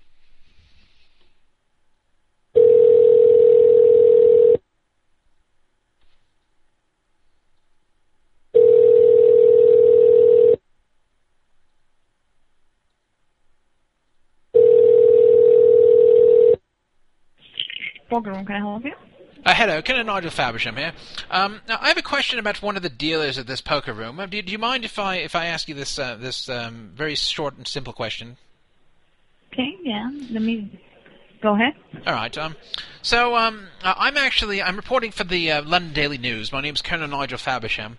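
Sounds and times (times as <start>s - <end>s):
phone line ringing: 2.6s - 4.6s, 8.6s - 10.6s, 14.6s - 16.6s
speech: 18.2s - 28.5s, 29.5s - 37.9s.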